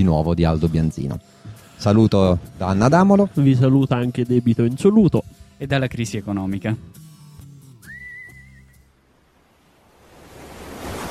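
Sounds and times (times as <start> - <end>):
speech: 0.0 - 7.0
brief whistling tone: 7.8 - 8.9
broad rushing wash of noise: 9.3 - 11.0.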